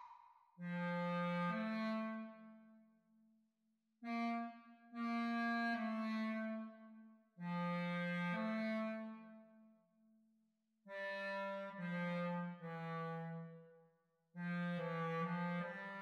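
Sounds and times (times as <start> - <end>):
clarinet duet: 0.6 - 2.6, 4.1 - 6.8, 7.4 - 9.3, 10.9 - 13.6, 14.4 - 16.0.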